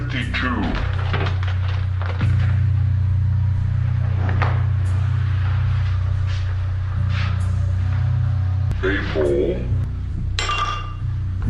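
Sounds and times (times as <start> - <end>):
low steady hum: 0.0 - 11.4
fine crystal wine glass with wine clinking in a toast: 10.4 - 11.1.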